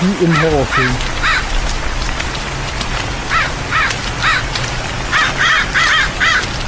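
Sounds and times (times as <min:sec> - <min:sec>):
rain: 0:00.0 - 0:06.6
speech: 0:00.2 - 0:01.2
ravens cawing: 0:00.2 - 0:01.9, 0:03.2 - 0:06.6.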